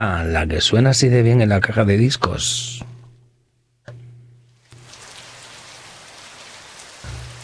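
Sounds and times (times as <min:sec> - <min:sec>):
speech: 0:00.0 - 0:02.9
rain falling: 0:04.6 - 0:07.4.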